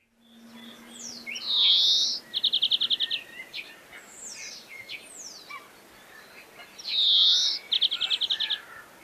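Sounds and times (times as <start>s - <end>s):
European greenfinch singing outdoors: 0.0s - 5.6s, 6.8s - 9.0s
other faint bird calls: 0.0s - 9.0s.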